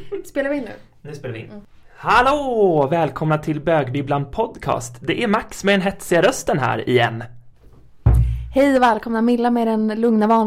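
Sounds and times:
speech: 0.0 - 7.4, 8.5 - 10.4
chair thudding as it nearly tips over: 7.6 - 8.5
lingering rumbling knock: 8.0 - 8.8.

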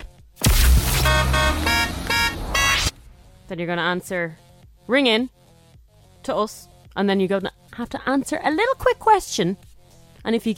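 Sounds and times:
burst of noise: 0.4 - 3.1
Renault Clio car horn honking: 0.9 - 3.0
speech: 3.5 - 5.4, 6.2 - 9.6, 10.2 - 10.5.

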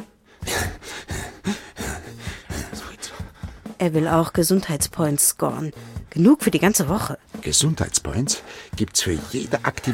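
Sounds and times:
man panting heavily while running for training: 0.0 - 3.8, 8.4 - 8.8
speech: 3.8 - 9.9.

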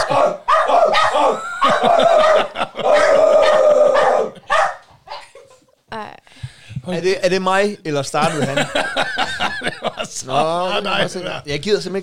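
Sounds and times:
dog barking: 0.0 - 5.3
laughter: 1.1 - 4.6, 8.2 - 11.6
speech: 7.0 - 9.0, 10.2 - 12.0.

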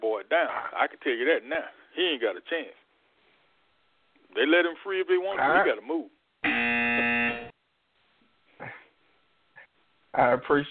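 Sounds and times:
speech: 0.3 - 2.8, 4.4 - 6.7, 10.2 - 10.6
harsh buzzer ending a caller's time: 6.4 - 7.6.

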